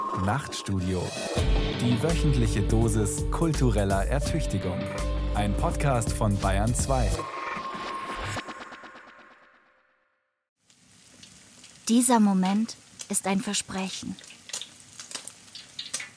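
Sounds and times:
speech: 0.2s - 7.4s, 11.9s - 14.3s
butter melting and sizzling in a pan: 10.6s - 16.1s.

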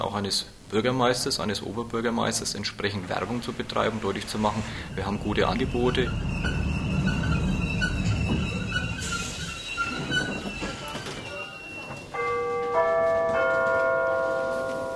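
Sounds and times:
speech: 0.0s - 6.6s
train rumbling in: 2.2s - 12.3s
train wheels screeching as it slows: 2.9s - 12.1s
bright sustained chime of several bell-like tones: 11.2s - 14.9s.

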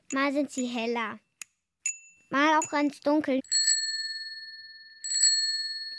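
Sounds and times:
speech: 0.1s - 1.2s, 2.3s - 3.5s
bicycle bell ringing: 1.8s - 2.8s, 3.4s - 5.9s.

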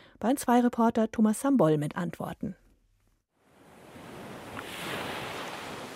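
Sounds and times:
speech: 0.2s - 2.6s
wind: 3.4s - 5.9s
waves washing onto the shore of a Baltic Sea bay: 3.6s - 5.9s.

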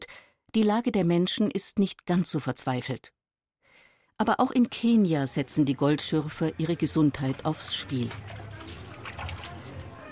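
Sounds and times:
speech: 0.5s - 3.2s, 4.2s - 8.4s
muddy water sloshing and swirling in a metal bowl: 6.8s - 10.1s
gold miner stirring muddy water in a metal bowl with bare hand: 7.2s - 10.1s.

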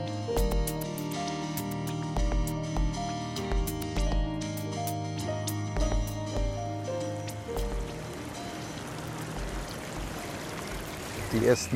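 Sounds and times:
short musical passage with plucked notes: 0.0s - 11.0s
wild river rushing and churning: 6.9s - 11.7s
speech: 11.3s - 11.7s.

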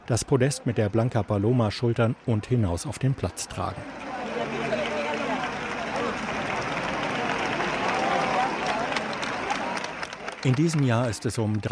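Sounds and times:
speech: 0.1s - 4.8s, 10.4s - 11.7s
large crowd roaring and cheering at a religious procession: 2.2s - 11.1s
voices shouting: 3.8s - 10.1s
scattered clapping: 3.9s - 11.7s.

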